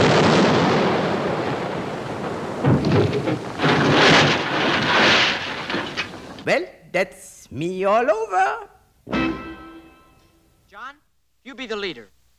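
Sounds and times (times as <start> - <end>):
cannon fire of a 21-gun salute: 0.0 - 6.5
speech: 6.5 - 9.4, 10.8 - 12.2.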